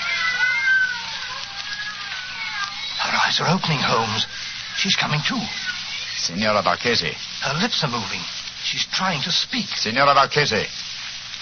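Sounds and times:
cats meowing and yowling in a room: 0.0 - 6.2
speech: 3.3 - 10.8.

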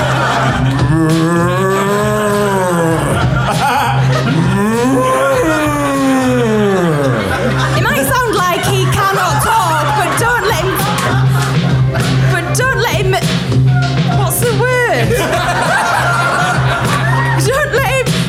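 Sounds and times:
laughter: 0.0 - 18.2
person imitating cow mooing: 0.8 - 3.3, 4.3 - 7.3.

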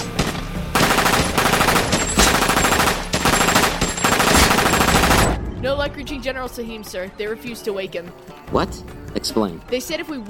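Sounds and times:
M249 light machine gun firing automatic bursts: 0.1 - 5.4
speech: 5.8 - 10.2.

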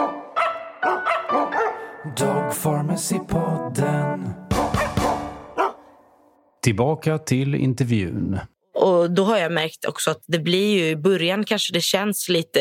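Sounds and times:
dog barking in a jingle: 0.0 - 1.9, 4.6 - 6.1
steady harmonic musical background of a short dog jingle: 0.0 - 5.7
speech: 2.0 - 4.4, 6.6 - 12.5.

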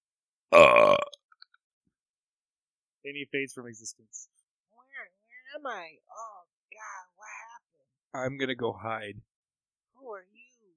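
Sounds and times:
speech: 0.5 - 0.9, 3.0 - 4.4, 5.6 - 7.4, 8.1 - 9.3
large very loud belch: 0.5 - 1.2.

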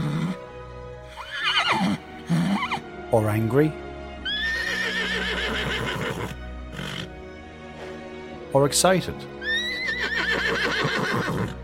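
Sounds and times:
male horse neighing at a stable: 0.0 - 0.4, 1.1 - 2.9, 4.2 - 7.1, 9.4 - 11.6
speech: 3.1 - 3.8, 8.5 - 9.3.

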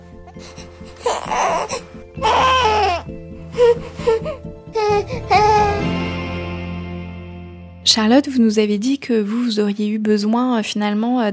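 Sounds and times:
baby crying in breathy bursts and wails: 0.3 - 6.0
speech: 0.4 - 2.4, 8.0 - 11.3.

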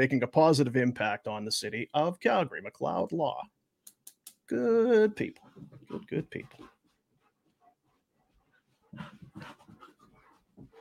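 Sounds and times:
speech: 0.0 - 3.6, 4.5 - 6.7, 9.0 - 9.6
100-pound dog panting: 5.4 - 10.7.

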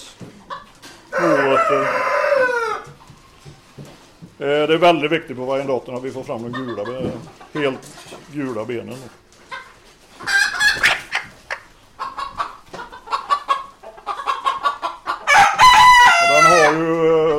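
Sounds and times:
chickens clucking: 0.0 - 17.3
rooster crowing: 1.1 - 3.0, 15.3 - 16.8
speech: 1.2 - 2.2, 4.4 - 9.2.

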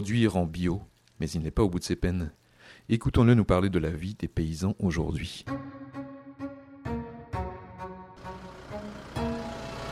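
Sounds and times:
speech: 0.0 - 5.7
tractor engine running: 8.2 - 9.9.

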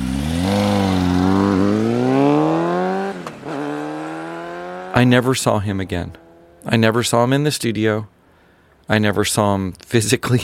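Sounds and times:
motorcycle engine starting up, accelerating and driving away: 0.0 - 6.7
speech: 5.0 - 8.1, 8.9 - 10.4.

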